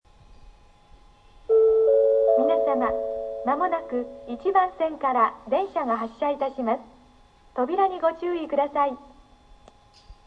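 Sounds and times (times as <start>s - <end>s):
Izumisano station platform 1 departure bell and departure announcement: 1.5s - 4.6s
departure announcement on platform 1: 1.5s - 9.2s.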